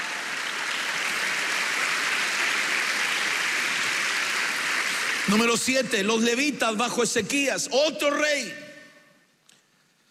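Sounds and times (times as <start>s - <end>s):
church audience clapping in praise: 0.0s - 6.2s
speech: 5.3s - 8.7s.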